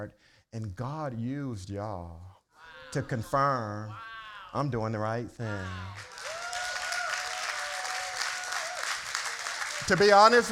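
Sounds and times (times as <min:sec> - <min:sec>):
speech: 0:00.0 - 0:06.2, 0:09.9 - 0:10.5
sustained high whoop or held tone: 0:05.6 - 0:09.2
crowd applauding: 0:05.9 - 0:10.5.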